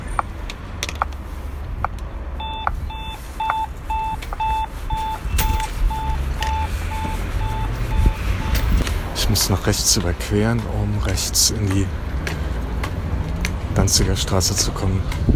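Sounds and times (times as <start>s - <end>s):
street noise: 0.0s - 15.3s
pedestrian traffic light signal beeping: 2.4s - 8.8s
speech: 9.3s - 12.4s, 13.8s - 15.3s.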